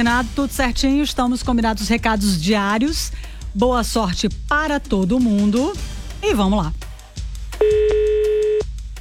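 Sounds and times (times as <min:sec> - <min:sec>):
speech: 0:00.0 - 0:06.8
telephone ring tone on a phone call: 0:07.6 - 0:08.7.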